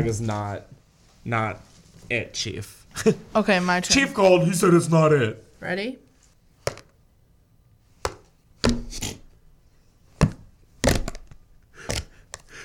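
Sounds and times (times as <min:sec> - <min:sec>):
speech: 0:00.0 - 0:06.0
giant thumbtack stabbing a plastic cream cheese lid: 0:08.0 - 0:09.2, 0:10.2 - 0:12.5.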